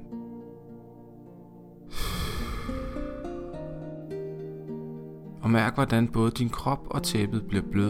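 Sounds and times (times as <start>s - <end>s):
gentle sustained music: 0.0s - 7.8s
slow deep exhalation: 1.9s - 3.7s
speech: 5.5s - 7.8s.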